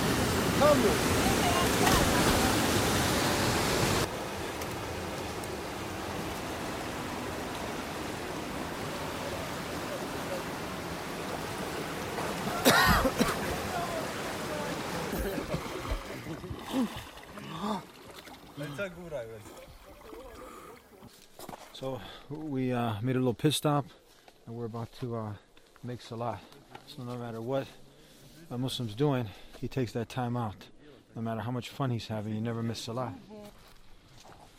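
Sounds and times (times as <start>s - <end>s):
waves splashing: 0.0s - 21.0s
speech: 0.6s - 1.3s, 21.9s - 27.8s, 28.5s - 33.4s.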